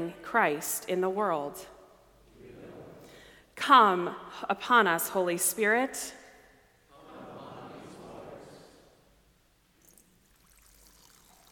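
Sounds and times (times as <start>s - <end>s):
speech: 0.0s - 1.8s, 3.6s - 6.2s
water pouring into a baptismal font during a church baptism service: 9.8s - 11.4s.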